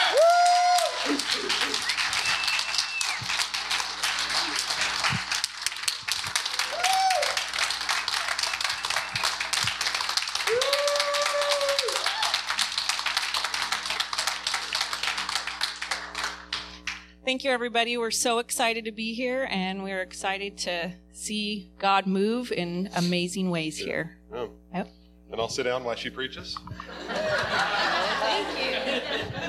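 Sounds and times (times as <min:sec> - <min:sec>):
crowd clapping and cheering: 0:00.0 - 0:17.1
laughter: 0:00.8 - 0:02.4, 0:26.7 - 0:29.4
whoops and whistles from the crowd: 0:01.8 - 0:03.3, 0:06.6 - 0:07.4, 0:08.5 - 0:09.4, 0:10.5 - 0:12.4
speech: 0:17.3 - 0:27.7.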